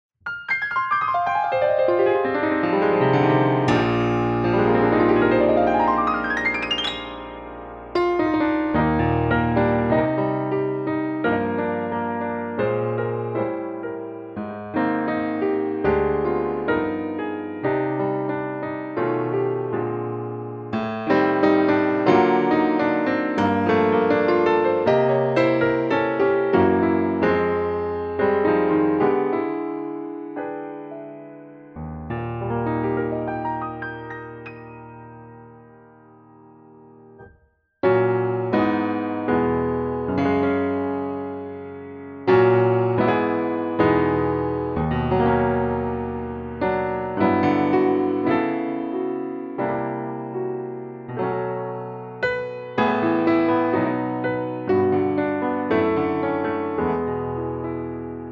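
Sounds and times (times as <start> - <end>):
Black Grand MkII grand piano: 0.2 - 58.2.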